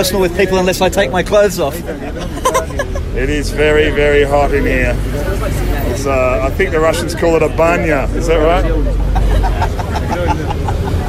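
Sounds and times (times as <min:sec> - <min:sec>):
speech: 0:00.0 - 0:02.5, 0:03.2 - 0:09.2
moving bus engine and road noise rumble: 0:00.0 - 0:11.0
laughter: 0:02.0 - 0:03.4, 0:08.8 - 0:11.0.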